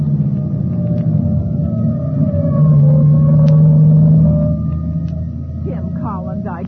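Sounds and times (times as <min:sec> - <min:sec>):
fire engine siren wailing on the way to a fire: 0:00.0 - 0:06.6.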